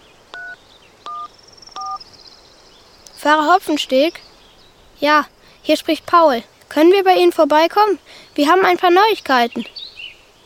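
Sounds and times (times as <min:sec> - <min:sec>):
mobile phone keypad tones while dialling a number: 0:00.3 - 0:02.0
speech: 0:03.2 - 0:04.3, 0:05.0 - 0:09.8.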